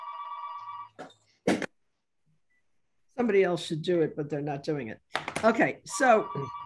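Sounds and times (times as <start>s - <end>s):
telephone ringing with a steady electronic tone: 0.0s - 1.0s, 5.9s - 6.6s
speech: 3.2s - 6.6s.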